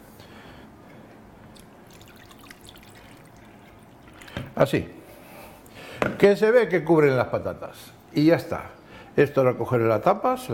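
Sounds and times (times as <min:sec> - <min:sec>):
light water drips: 0:00.9 - 0:04.9
water pouring into a pot of potatoes: 0:01.6 - 0:04.6
speech: 0:04.6 - 0:05.0, 0:06.1 - 0:10.5.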